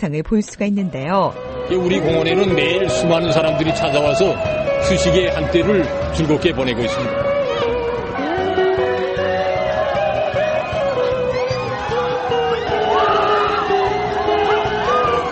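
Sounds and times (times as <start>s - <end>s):
speech: 0.0s - 7.3s
crowd of riders screaming and whooping in fright on an amusement park ride: 7.4s - 15.3s.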